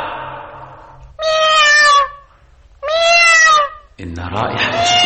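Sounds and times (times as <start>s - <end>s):
cat meowing: 1.1s - 3.9s, 4.6s - 5.0s.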